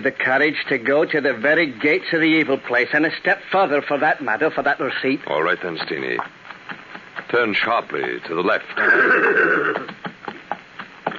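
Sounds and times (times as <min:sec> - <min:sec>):
speech: 0:00.0 - 0:06.4, 0:07.3 - 0:10.0
hooves clopping as a horse is ridden through a stand of black fir: 0:05.2 - 0:11.1
horse neighing: 0:08.8 - 0:10.0.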